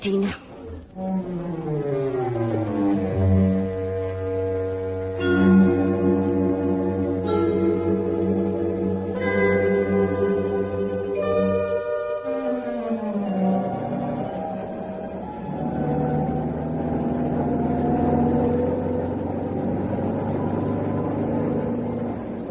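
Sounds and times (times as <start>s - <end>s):
car engine droning while driving on a bad rough road: 0.5s - 22.4s.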